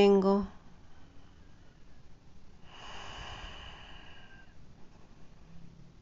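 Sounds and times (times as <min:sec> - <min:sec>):
speech: 0:00.0 - 0:00.5
slow breath out through the nose during a calm relaxation pause: 0:02.6 - 0:04.6.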